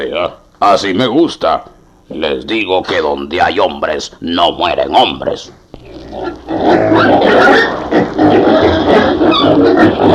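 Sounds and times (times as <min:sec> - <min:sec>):
speech: 0:00.0 - 0:05.6
pigs grunting and snorting: 0:05.8 - 0:10.1.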